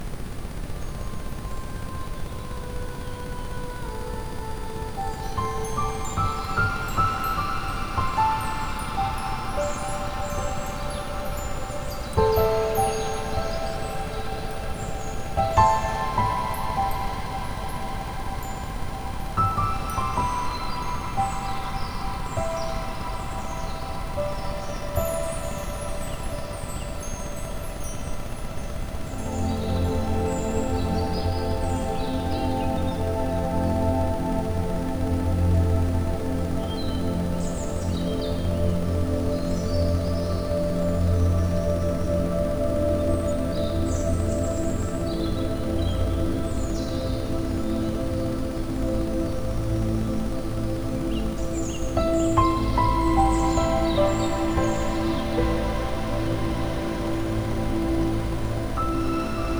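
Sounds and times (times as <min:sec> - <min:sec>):
ambient sound with Rife frequencies: 0:00.0 - 0:59.5.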